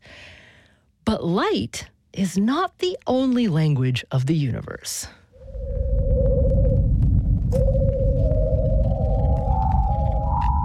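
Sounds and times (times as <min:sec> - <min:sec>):
speech: 0:01.1 - 0:05.2
Venus upper-atmosphere low-frequency radio emission converted to whistling tones: 0:05.4 - 0:10.6
dense steady low rumble of converted Venus radio emission: 0:05.4 - 0:10.6.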